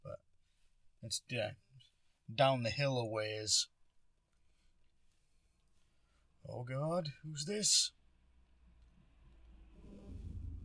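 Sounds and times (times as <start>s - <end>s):
speech: 1.1s - 1.6s, 2.3s - 3.7s, 6.5s - 8.0s
car engine rumble on a road: 9.2s - 10.6s.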